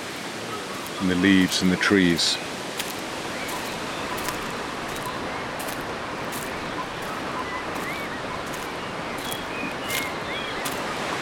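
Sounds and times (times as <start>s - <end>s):
rushing river rapids and falling water: 0.0s - 11.1s
faint high bird chirps: 0.4s - 11.1s
speech: 1.0s - 2.5s.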